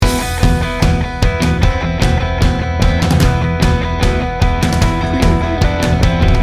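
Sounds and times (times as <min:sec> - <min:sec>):
tribal rock loop: 0:00.0 - 0:06.4.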